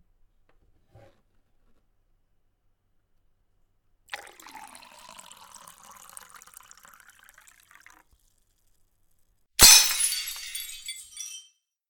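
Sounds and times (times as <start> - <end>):
liquid pouring: 4.1 - 8.0
drinking glass smashing on the floor: 9.6 - 11.5
tinkling shards of broken glass: 9.6 - 11.5.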